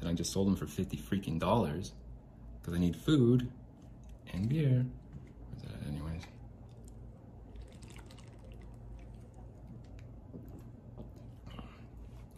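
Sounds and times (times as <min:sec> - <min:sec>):
speech: 0:00.0 - 0:02.0, 0:02.6 - 0:03.6, 0:04.3 - 0:05.0
low hum: 0:00.0 - 0:12.3
beer being poured: 0:06.4 - 0:10.4.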